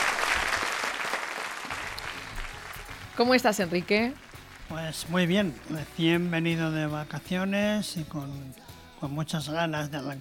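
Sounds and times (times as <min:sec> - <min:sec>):
audience applause greeting a guest at a gala: 0:00.0 - 0:05.6
speech: 0:03.2 - 0:10.1.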